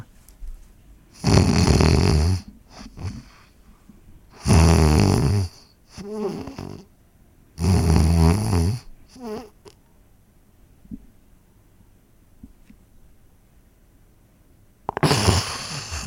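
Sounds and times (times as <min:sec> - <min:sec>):
person imitating snoring and sleep apnea breathing: 0:01.2 - 0:03.3, 0:04.4 - 0:06.9, 0:07.6 - 0:09.6, 0:14.9 - 0:16.0
faint breathing: 0:02.4 - 0:04.4, 0:15.0 - 0:16.0.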